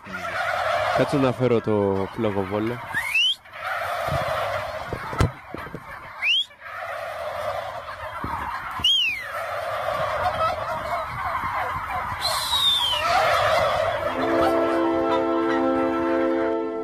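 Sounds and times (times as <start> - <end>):
flock of turkeys gobbling: 0.0 - 16.8
speech: 1.0 - 3.0.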